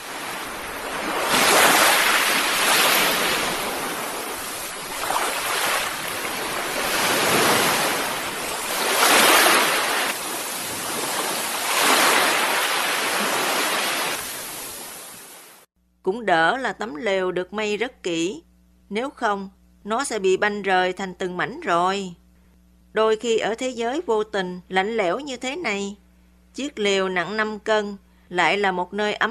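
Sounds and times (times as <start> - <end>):
ocean waves crashing against rocks: 0.0 - 15.4
speech: 16.2 - 22.2, 22.9 - 26.0, 26.6 - 29.2.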